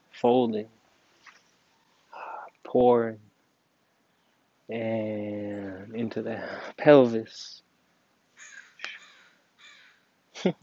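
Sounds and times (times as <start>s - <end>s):
speech: 0.2s - 0.8s, 2.7s - 3.3s, 4.7s - 7.6s, 10.4s - 10.6s
crow cawing on a quiet morning: 8.4s - 10.0s.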